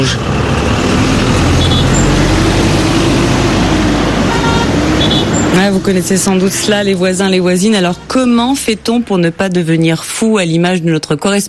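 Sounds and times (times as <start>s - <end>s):
traffic jam noise in Kinshasa heard from inside a taxi: 0.0s - 11.4s
brief car horn toots: 1.6s - 2.0s, 4.2s - 5.5s
speech: 5.6s - 11.4s.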